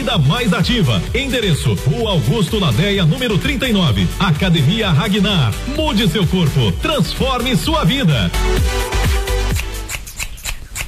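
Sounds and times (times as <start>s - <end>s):
speech: 0.1s - 9.1s
scissors snipping: 9.5s - 10.8s.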